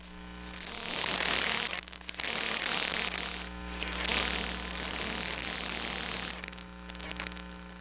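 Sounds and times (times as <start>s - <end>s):
computer tower electromagnetic noise: 0.0s - 7.7s.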